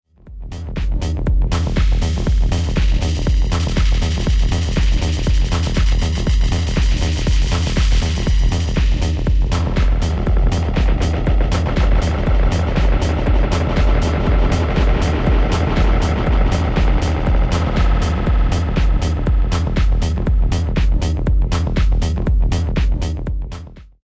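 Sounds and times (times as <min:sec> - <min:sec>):
dub delay effect: 0:00.3 - 0:23.7.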